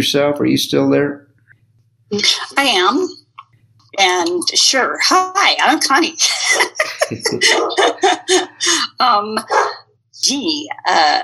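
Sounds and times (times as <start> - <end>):
laughter: 0.0 - 1.1, 6.2 - 9.7
speech: 0.0 - 1.2, 2.1 - 3.2, 4.0 - 11.2
dogs barking: 7.1 - 8.1, 9.4 - 9.8.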